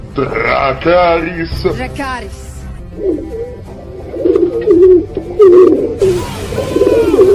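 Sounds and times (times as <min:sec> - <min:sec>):
speech: 0:00.2 - 0:07.3
pigeon cooing: 0:03.0 - 0:06.0.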